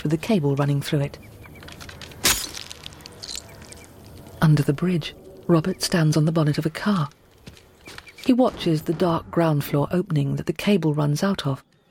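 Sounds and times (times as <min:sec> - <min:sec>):
speech: 0:00.0 - 0:01.5, 0:04.5 - 0:07.2, 0:08.2 - 0:11.7
quiet noise: 0:00.0 - 0:11.8
small glass vial of blood smashed on a black sheet in a dark warehouse: 0:02.2 - 0:03.5.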